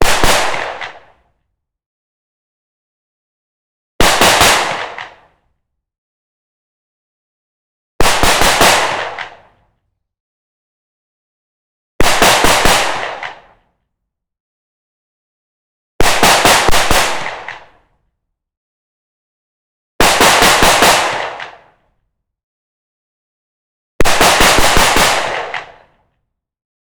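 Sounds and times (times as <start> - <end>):
shotgun firing solid slug bursts: 0.0 - 1.1, 4.0 - 5.2, 8.0 - 9.5, 12.0 - 13.5, 16.0 - 17.8, 20.0 - 21.6, 24.0 - 25.8.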